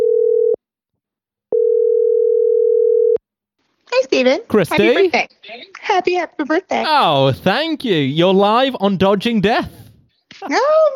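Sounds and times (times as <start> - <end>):
telephone ringback tone through a mixer: 0.0 - 0.6, 1.5 - 3.2
speech: 4.2 - 9.8, 10.4 - 10.9.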